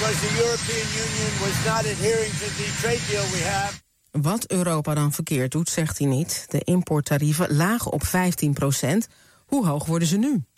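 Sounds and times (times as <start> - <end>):
loud steady helicopter engine roar: 0.0 - 3.8
speech: 0.2 - 10.5.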